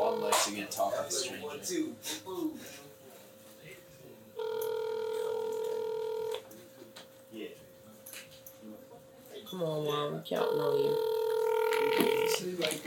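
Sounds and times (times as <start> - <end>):
ringback tone from an outgoing phone call: 0.0 - 0.6, 4.4 - 6.4, 10.4 - 12.5
speech: 0.5 - 2.9, 9.5 - 11.2, 11.8 - 12.8.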